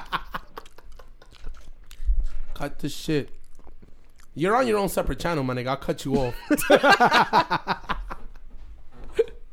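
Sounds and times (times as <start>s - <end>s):
laughter: 0.0s - 1.4s, 6.1s - 8.4s
wet chewing of macaroni and cheese against the microphone: 0.4s - 4.8s
speech: 2.6s - 3.4s, 4.4s - 7.8s.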